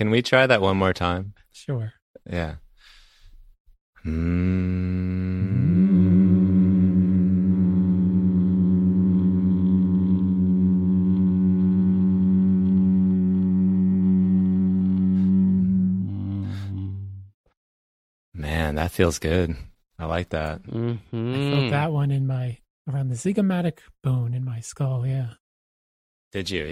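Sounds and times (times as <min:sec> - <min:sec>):
speech: 0:00.0 - 0:02.6, 0:04.0 - 0:05.8, 0:18.6 - 0:25.4, 0:26.3 - 0:26.7
two people humming a low drone: 0:04.0 - 0:17.2, 0:20.8 - 0:21.7.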